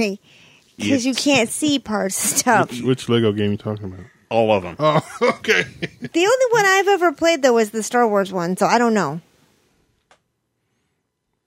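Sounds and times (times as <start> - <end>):
speech: 0.0 - 9.3
laughter: 2.2 - 3.1, 4.7 - 6.4
person sneezing: 5.4 - 5.8.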